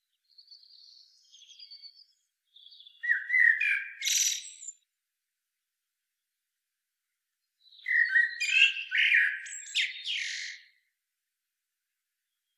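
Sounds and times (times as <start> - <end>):
common blackbird Turdus merula singing: 0.2 - 4.8, 7.6 - 10.8.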